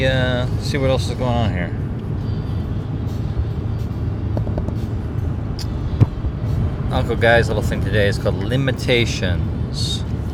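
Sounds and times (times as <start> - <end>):
speech: 0.0 - 1.9, 6.9 - 10.1
car driving on a highway during a morning commute: 0.0 - 10.3
knock: 4.4 - 4.8.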